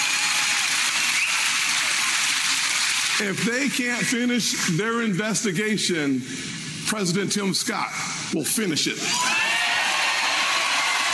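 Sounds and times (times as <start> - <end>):
large crowd cheering at a town hall rally in Myrtle Beach South Carolina: 0.0 - 3.1, 9.1 - 11.1
speech: 3.2 - 9.3.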